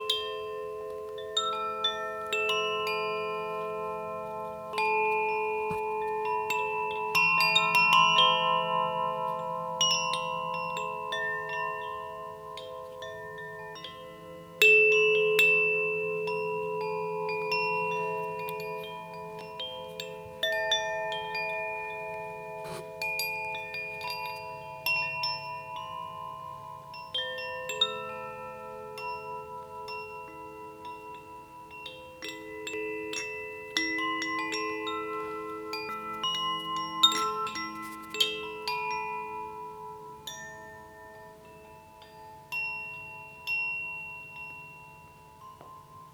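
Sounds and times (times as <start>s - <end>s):
Koshi wind chimes: 0.0s - 46.1s.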